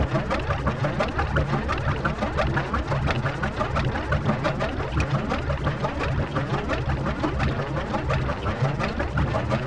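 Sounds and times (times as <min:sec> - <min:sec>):
gear: 0:00.0 - 0:09.6.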